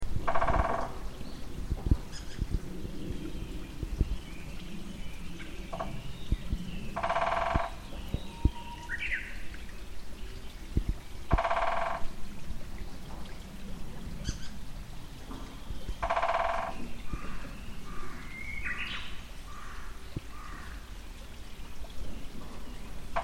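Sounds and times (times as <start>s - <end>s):
water flowing in an irrigation channel: 0.0s - 23.2s
two great spotted woodpeckers drumming on an April morning walk: 0.3s - 0.9s, 7.0s - 7.8s, 11.3s - 12.0s, 16.0s - 17.3s.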